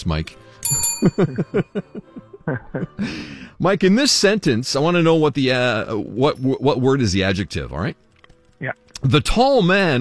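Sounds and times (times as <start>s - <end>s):
speech: 0.0s - 8.0s, 8.6s - 9.9s
bell ringing during a quiz game: 0.6s - 2.0s
laughter: 1.0s - 3.2s.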